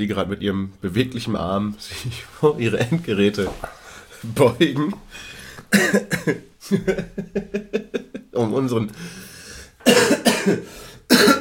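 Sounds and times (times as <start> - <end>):
speech: 0.0 - 9.2, 9.8 - 11.3
person coughing while choking on food: 5.7 - 6.4, 9.8 - 11.3
laughter: 6.2 - 8.4.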